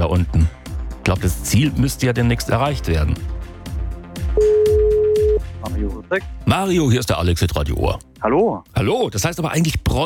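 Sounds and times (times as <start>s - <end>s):
speech: 0.1s - 3.3s, 5.6s - 10.0s
phone ringback tone beep: 4.4s - 5.4s.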